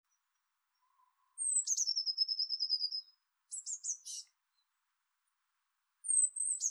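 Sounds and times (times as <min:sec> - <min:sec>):
Eurasian blue tit Cyanistes caeruleus singing: 0:00.1 - 0:04.7, 0:06.0 - 0:06.6.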